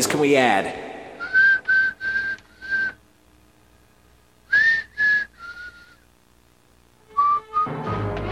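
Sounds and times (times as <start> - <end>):
speech: 0.0 - 0.8
person whistling a slow eerie tune: 1.2 - 3.0, 4.5 - 6.0, 7.2 - 7.8.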